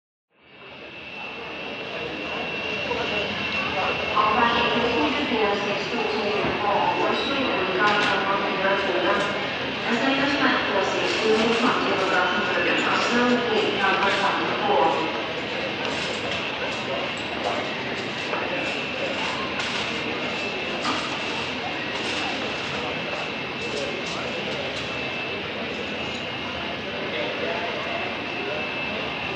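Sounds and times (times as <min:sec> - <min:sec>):
airport ambience: 0:00.4 - 0:29.3.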